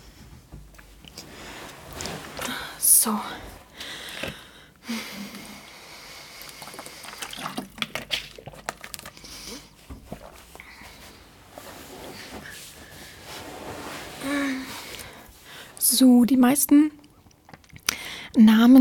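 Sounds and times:
speech: 0:03.0 - 0:03.5, 0:16.0 - 0:17.0, 0:18.4 - 0:18.8
person pouring water: 0:06.4 - 0:09.4.

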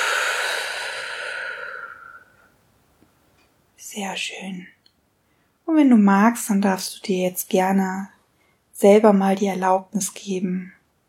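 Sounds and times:
slow breathy exhale during a guided breathing exercise: 0:00.0 - 0:02.6
speech: 0:03.9 - 0:04.8, 0:05.7 - 0:08.2, 0:08.8 - 0:10.8.

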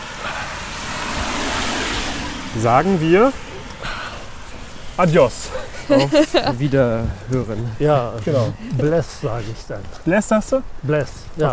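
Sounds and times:
car driving past: 0:00.0 - 0:05.4
speech: 0:02.6 - 0:03.5, 0:05.0 - 0:11.5
laughter: 0:05.3 - 0:09.4.

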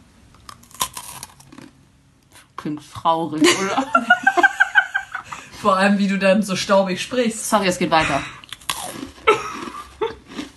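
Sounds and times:
person biting into a crunchy snack: 0:00.3 - 0:01.8, 0:08.4 - 0:10.5
speech: 0:02.6 - 0:04.3, 0:05.6 - 0:08.4
laughter: 0:03.4 - 0:05.5.

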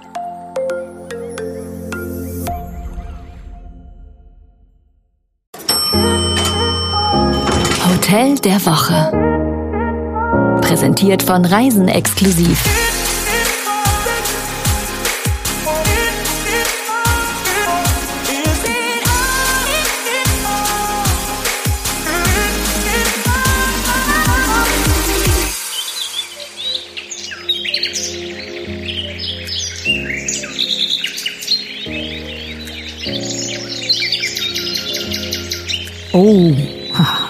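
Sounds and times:
music: 0:00.0 - 0:04.8, 0:05.6 - 0:37.2
speech: 0:08.1 - 0:09.2, 0:10.6 - 0:13.0
bird chirps and trills in a forest in central Germany: 0:25.6 - 0:37.2.

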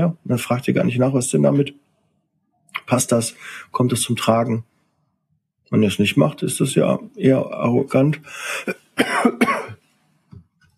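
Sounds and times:
speech: 0:00.0 - 0:01.8, 0:02.9 - 0:04.7, 0:05.7 - 0:09.5
harsh coughing from a person with a cold: 0:08.4 - 0:09.8.

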